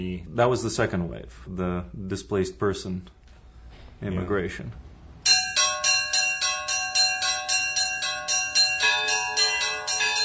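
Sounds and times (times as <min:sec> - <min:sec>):
speech: 0:00.0 - 0:03.2, 0:04.0 - 0:04.9
church bells ringing in a quick rhythmic pattern: 0:05.2 - 0:10.2.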